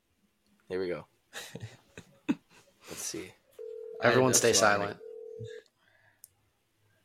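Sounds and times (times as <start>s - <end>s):
speech: 0.7s - 1.8s, 4.0s - 5.6s
phone dialing on speakerphone held up to a microphone: 3.6s - 5.6s.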